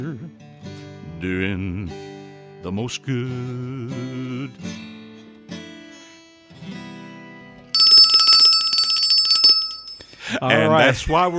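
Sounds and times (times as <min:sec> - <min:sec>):
speech: 0:01.2 - 0:04.9, 0:10.3 - 0:11.3
hand bell shaken rapidly: 0:07.8 - 0:10.0.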